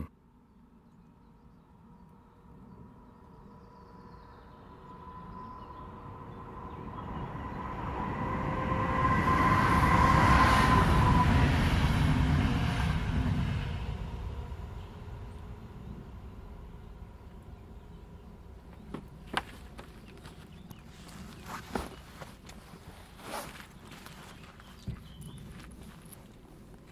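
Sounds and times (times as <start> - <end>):
train passing on railway: 4.5 - 26.9.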